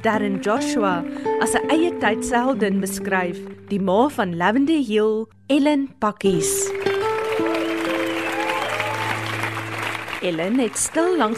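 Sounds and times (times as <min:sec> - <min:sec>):
speech: 0:00.0 - 0:06.9, 0:10.2 - 0:11.3
hall full of people applauding: 0:06.7 - 0:11.3
scattered cheers in a hall: 0:07.0 - 0:11.3.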